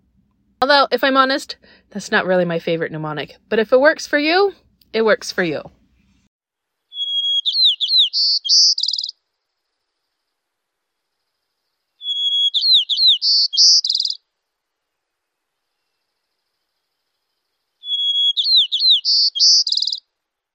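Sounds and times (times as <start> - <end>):
speech: 0.6 - 5.8
white-crowned sparrow singing: 6.9 - 9.2, 12.0 - 14.2, 17.8 - 20.0.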